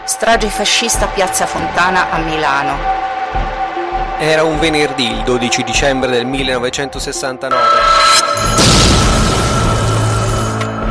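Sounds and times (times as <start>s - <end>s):
speech: 0.1s - 3.4s, 4.2s - 8.7s
powerful bomb explosion: 8.6s - 10.6s.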